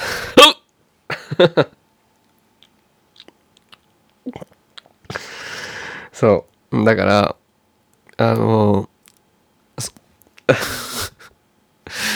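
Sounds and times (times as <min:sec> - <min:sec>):
person hiccuping: 0:00.4 - 0:00.6, 0:04.3 - 0:04.5
speech: 0:01.4 - 0:01.8, 0:06.2 - 0:07.4, 0:08.2 - 0:08.9, 0:09.8 - 0:10.9
breathy exhale: 0:05.1 - 0:06.2, 0:11.9 - 0:12.1.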